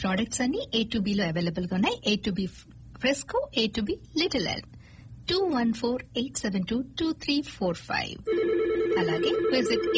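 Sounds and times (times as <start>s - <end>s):
speech: 0.0s - 9.9s
telephone ringing with an incoming call: 8.3s - 9.9s.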